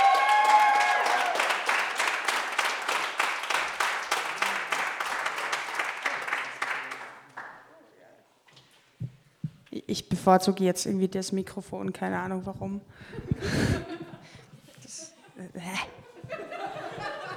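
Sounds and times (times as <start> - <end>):
audience whoop: 0.0 - 1.7
audience applauding in rhythmic unison: 0.0 - 7.8
speech: 9.9 - 13.9
laughter: 13.0 - 17.3.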